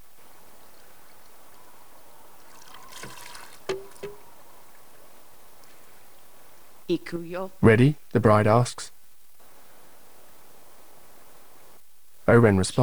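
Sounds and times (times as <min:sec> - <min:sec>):
water spilling and trickling into a garden pond feature: 0:00.0 - 0:06.5
smaller tap: 0:03.0 - 0:04.3
sharp hollow knock: 0:03.7 - 0:04.3
speech: 0:06.9 - 0:09.0, 0:12.3 - 0:12.8.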